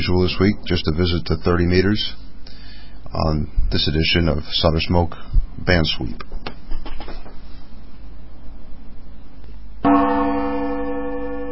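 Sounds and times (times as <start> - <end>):
speech: 0.0 - 2.2, 3.1 - 6.3
gong strike: 9.8 - 11.5.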